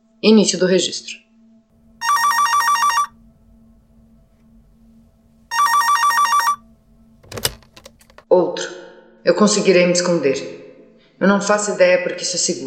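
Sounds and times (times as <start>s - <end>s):
speech: 0.2s - 1.3s, 9.3s - 10.6s, 11.2s - 12.6s
telephone ringing at the start of a recorded phone call: 1.9s - 3.4s, 5.5s - 8.2s.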